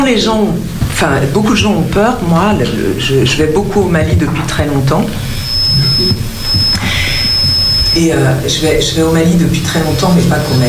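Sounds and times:
speech: 0.1s - 5.3s, 6.0s - 7.1s, 7.9s - 10.6s
thin steady high-pitched microphone feedback whine: 2.6s - 10.6s.

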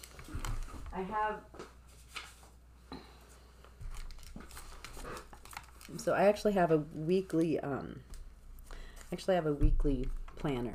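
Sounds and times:
paper crinkling and rustling, handled: 0.0s - 1.0s, 1.8s - 2.6s, 3.7s - 6.6s
speech: 1.0s - 1.6s, 5.9s - 8.1s, 9.1s - 10.7s.

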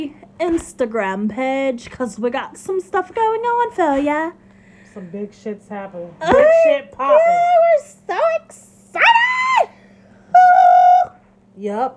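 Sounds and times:
speech: 0.0s - 4.4s, 5.0s - 8.7s, 11.6s - 11.9s
person imitating a pigeon: 10.3s - 11.3s.

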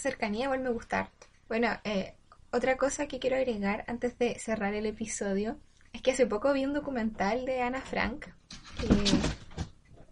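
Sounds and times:
speech: 0.0s - 9.4s
cat tumbling with scuffling and thudding: 8.7s - 9.8s.

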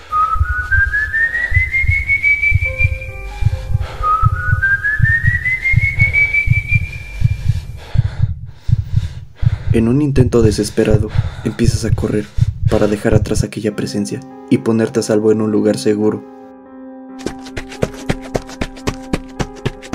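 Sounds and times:
long rising eerie whistles: 0.0s - 7.5s
pulsing low thumping of a pounding heartbeat: 0.4s - 13.5s, 17.2s - 19.9s
speech: 9.8s - 16.4s.

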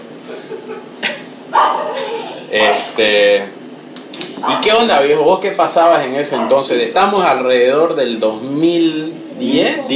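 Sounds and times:
speech: 0.7s - 3.6s, 4.4s - 9.9s
dog barking: 1.5s - 2.9s, 4.4s - 4.8s.

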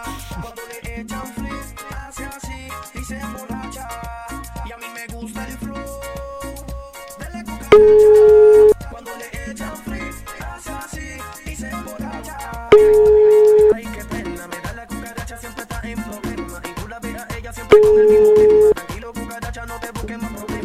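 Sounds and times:
music: 0.0s - 20.6s
telephone ringback tone while placing a call: 7.7s - 8.8s, 12.7s - 13.8s, 17.7s - 18.8s.

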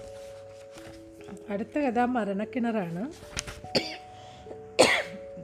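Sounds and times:
speech: 1.5s - 3.4s
raspy coughs from one person: 3.7s - 4.0s, 4.8s - 5.2s.

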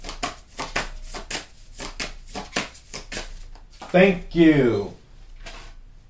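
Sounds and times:
tarot cards being drawn and shuffled: 0.0s - 4.0s
speech: 3.9s - 5.0s.

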